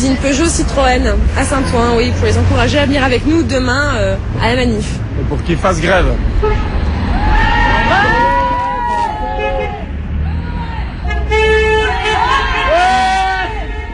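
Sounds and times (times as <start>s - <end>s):
speech: 0.0s - 6.8s
steady traffic noise: 0.0s - 13.9s
car horns honking from passing cars: 6.3s - 7.1s, 8.8s - 13.9s.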